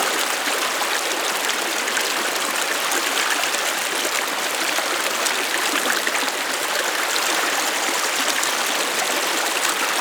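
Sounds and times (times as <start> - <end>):
medium waterfall: 0.0 - 9.9.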